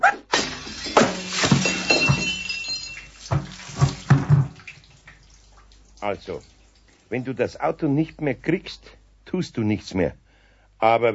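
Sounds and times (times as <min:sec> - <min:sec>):
pot of water thrown down onto the floor with a clattering crash: 0:00.3 - 0:04.7
water splashing from a thrown pot: 0:00.3 - 0:08.7
knocks and clinks of a pot settling: 0:00.4 - 0:04.6
speech: 0:06.0 - 0:10.2, 0:10.8 - 0:11.1.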